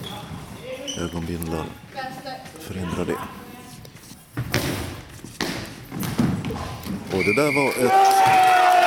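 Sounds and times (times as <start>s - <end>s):
steady noisy arena background in a sports hall: 0.0s - 8.8s
speech: 1.0s - 3.5s, 7.1s - 8.5s
goalball shot bouncing across a wooden floor in a sports hall: 4.4s - 7.2s.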